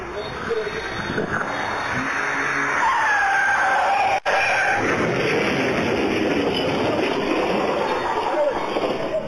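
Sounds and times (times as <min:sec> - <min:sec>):
road and engine noise: 0:00.0 - 0:09.2
car tires squealing in a long skid: 0:00.7 - 0:05.2.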